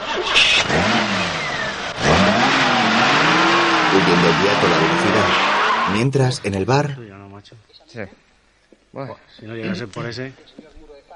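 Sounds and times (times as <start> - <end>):
getaway car engine starting and revving as it drives off: 0.0 - 6.4
speech: 4.0 - 8.2, 8.9 - 10.8.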